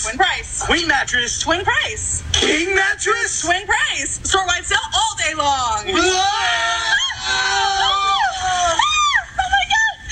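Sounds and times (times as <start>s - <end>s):
speech: 0.0s - 6.5s
several people screaming in overlapping wails: 6.0s - 9.4s.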